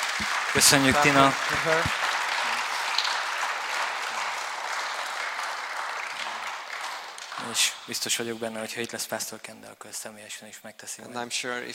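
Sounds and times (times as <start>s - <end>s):
church congregation applauding: 0.0s - 8.6s
speech: 0.2s - 2.0s, 7.5s - 11.7s.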